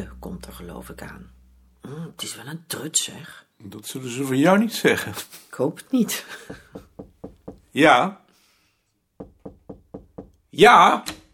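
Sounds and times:
speech: 0:00.0 - 0:07.1, 0:07.7 - 0:08.2, 0:10.6 - 0:11.2
knocking on a wooden door: 0:06.4 - 0:07.7, 0:09.2 - 0:10.4.

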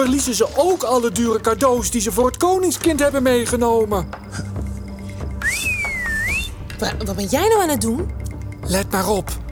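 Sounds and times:
speech: 0:00.0 - 0:04.5, 0:06.8 - 0:09.4
person whistling to call camels: 0:05.4 - 0:06.6.

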